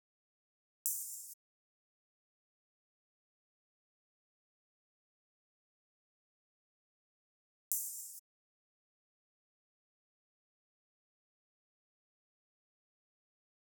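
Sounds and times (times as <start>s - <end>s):
70 BPM drum loop with open hi-hat: 0.9s - 1.4s.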